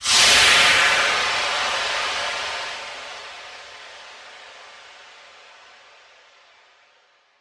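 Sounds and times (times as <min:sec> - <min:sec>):
steam burst: 0:00.0 - 0:04.7.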